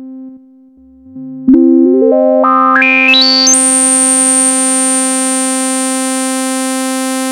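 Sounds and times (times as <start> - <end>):
synth through digital resonant low pass filter: 0.8 - 7.1.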